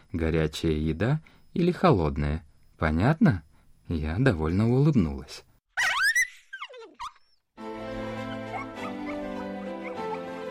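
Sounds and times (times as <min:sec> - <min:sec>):
speech: 0:00.1 - 0:05.5
dog yelping and whining: 0:05.8 - 0:07.4, 0:08.2 - 0:10.3.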